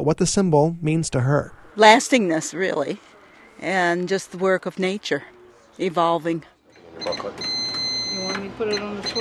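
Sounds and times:
speech: 0:00.0 - 0:07.6, 0:08.2 - 0:09.2
voices murmuring in a small shop: 0:01.2 - 0:09.2
cash register clicking and beeping in village store: 0:06.9 - 0:09.2.

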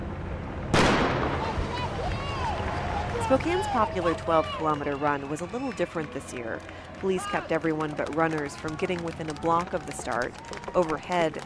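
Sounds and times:
starting gun fired to begin a 12-kilometer road race in Spokane: 0:00.8 - 0:01.6
crowd voices: 0:01.3 - 0:11.4
speech: 0:03.3 - 0:11.4.

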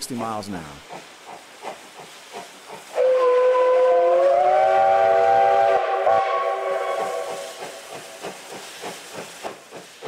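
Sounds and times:
speech: 0:00.0 - 0:01.1
steam locomotive chuffing at speed on a single-track stretch: 0:00.0 - 0:10.0
long multi-tone steam locomotive whistle blast: 0:02.9 - 0:07.8.

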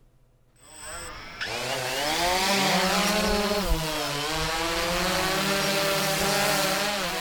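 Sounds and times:
DJI Phantom 2 quadcopter drone whirring in flight over Bristol Bay: 0:00.6 - 0:07.1.

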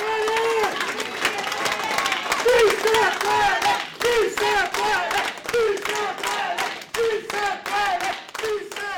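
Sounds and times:
sharp hand claps: 0:00.0 - 0:08.9
crowd chanting a short slogan in unison: 0:02.4 - 0:08.9.

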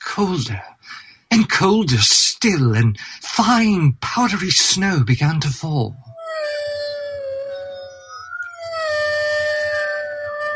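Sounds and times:
speech: 0:00.2 - 0:06.2
several wolves howling: 0:06.1 - 0:10.5.

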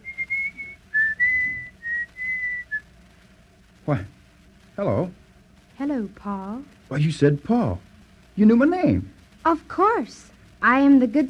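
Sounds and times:
person whistling a short gentle tune while leaning against a door: 0:00.0 - 0:02.8
faint low murmur: 0:00.0 - 0:11.2
speech: 0:03.9 - 0:04.2, 0:04.8 - 0:05.2, 0:05.8 - 0:11.2.

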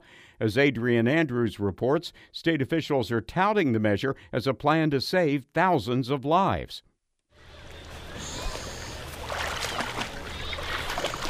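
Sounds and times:
speech: 0:00.4 - 0:06.9
kids and adults splashing and swimming in a pool: 0:07.4 - 0:11.2.

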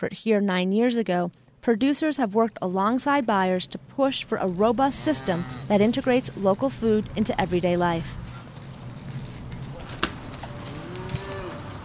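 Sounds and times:
speech: 0:00.0 - 0:08.2
dairy heifer mooing: 0:04.9 - 0:05.9, 0:10.5 - 0:11.8.

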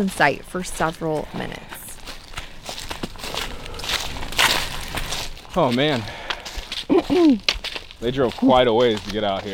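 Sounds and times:
speech: 0:00.0 - 0:01.8, 0:05.6 - 0:06.2, 0:07.1 - 0:09.5
footsteps walking up a hill outdoors: 0:00.0 - 0:09.5.

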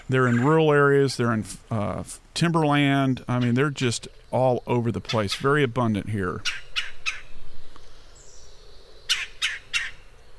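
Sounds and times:
red-bellied woodpecker calling: 0:00.0 - 0:00.9, 0:02.9 - 0:10.2
soft hiss: 0:00.0 - 0:10.3
speech: 0:00.1 - 0:06.6.

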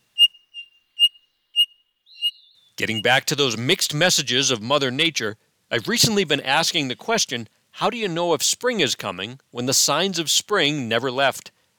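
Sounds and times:
Townsend's solitaire high squeaky whistled call: 0:00.0 - 0:02.7
speech: 0:02.8 - 0:11.6.

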